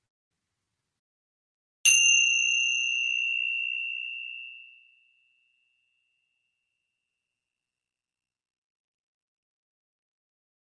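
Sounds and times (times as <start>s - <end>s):
meditation bell struck: 1.9s - 7.7s.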